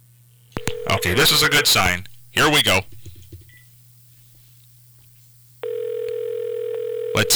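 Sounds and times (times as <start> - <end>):
electronic telephone ring tone over a phone line: 0.6 - 3.6, 5.6 - 7.3
speech: 0.9 - 3.0, 7.2 - 7.3.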